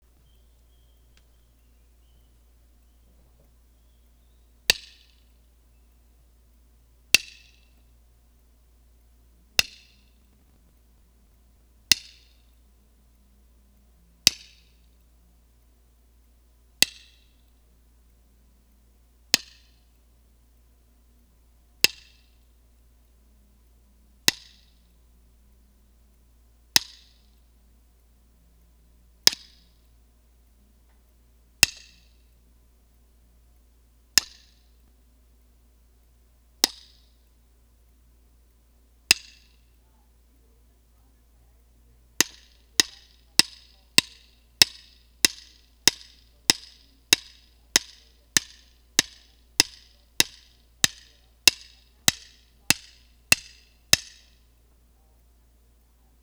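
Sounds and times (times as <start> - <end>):
sticks: 0.0 - 5.3, 7.1 - 7.9, 9.6 - 12.5, 16.8 - 17.3, 21.8 - 22.3, 24.3 - 24.7, 26.8 - 27.4, 29.2 - 29.8, 31.6 - 32.3, 34.2 - 34.7, 36.6 - 37.2, 39.1 - 39.7, 42.1 - 54.4.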